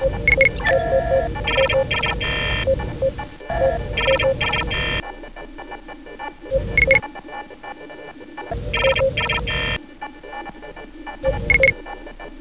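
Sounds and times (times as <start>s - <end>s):
computer ambience: 0.0s - 12.3s.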